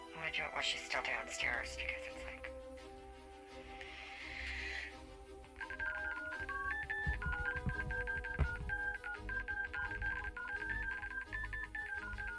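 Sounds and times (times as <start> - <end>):
speech: 0.2 - 2.9
touch-tone beeps of a phone number being dialed: 5.6 - 12.3.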